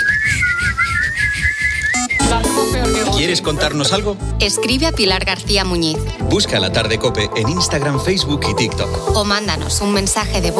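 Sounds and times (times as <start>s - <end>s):
children whistling as they leave: 0.0s - 3.1s
speech: 3.3s - 10.5s.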